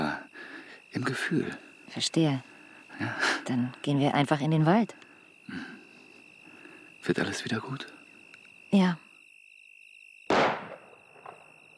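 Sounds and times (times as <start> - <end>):
steady high insect chirring: 0.0 - 11.7
speech: 0.9 - 5.7, 7.0 - 8.0, 8.7 - 9.0
single sharp gunshot with rolling echo: 10.3 - 11.4.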